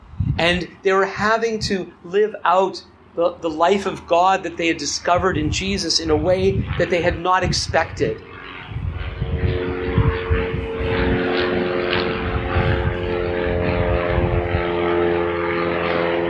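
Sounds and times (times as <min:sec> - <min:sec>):
propeller airplane passing overhead: 0:00.0 - 0:16.2
speech: 0:00.4 - 0:08.3.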